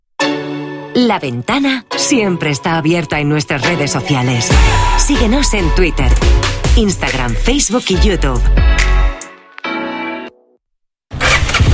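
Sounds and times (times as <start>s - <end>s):
speech: 1.0s - 8.9s
Honda Forza 125 motor scooter engine starting with a click: 11.1s - 11.7s.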